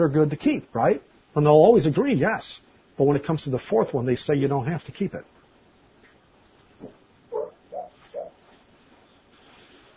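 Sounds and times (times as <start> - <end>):
speech: 0.0 - 5.3
dog woofing softly while asleep and dreaming: 6.8 - 8.5.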